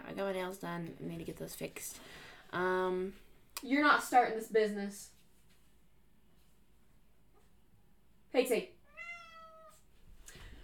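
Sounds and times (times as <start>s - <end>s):
speech: 0.2s - 5.2s, 8.3s - 8.8s
cat meowing to be let out: 8.9s - 9.8s.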